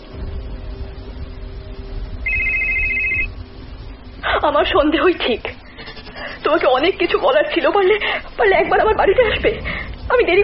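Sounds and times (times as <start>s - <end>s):
low hum: 0.0s - 10.4s
mobile phone ringtone of an incoming call: 2.2s - 3.3s
speech: 4.4s - 5.6s, 6.4s - 10.4s.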